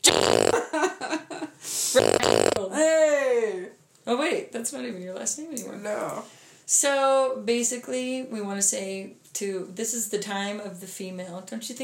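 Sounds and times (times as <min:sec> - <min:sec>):
fart sound effect: 0:00.0 - 0:00.6, 0:02.0 - 0:02.6
speech: 0:02.0 - 0:03.1, 0:04.1 - 0:11.8.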